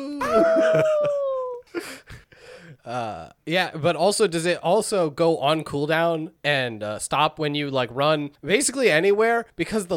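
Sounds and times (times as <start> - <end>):
person imitating the wolf howl of a video game speed booster: 0.0 - 1.6
laughter: 0.2 - 2.2
speech: 0.4 - 2.2, 2.8 - 9.9.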